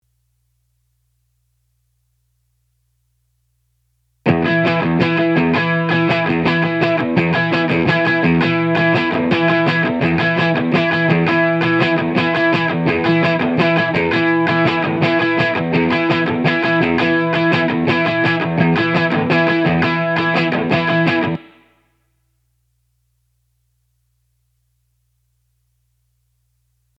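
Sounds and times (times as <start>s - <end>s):
guitar intro: 4.3s - 21.8s.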